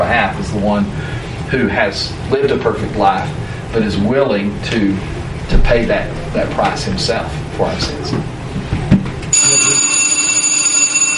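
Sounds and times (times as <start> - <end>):
low noise: 0.0 - 11.1
speech: 0.1 - 8.7
bell ringing with a high bright metallic tone: 9.3 - 11.1.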